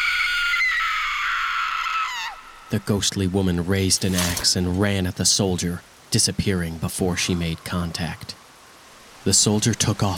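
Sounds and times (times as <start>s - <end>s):
woman screaming high-pitched: 0.0s - 2.7s
speech: 2.7s - 8.4s, 9.2s - 10.1s.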